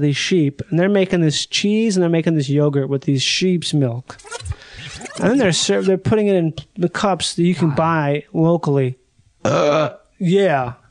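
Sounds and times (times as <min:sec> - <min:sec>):
speech: 0:00.0 - 0:10.8
long deep burps: 0:09.4 - 0:10.0.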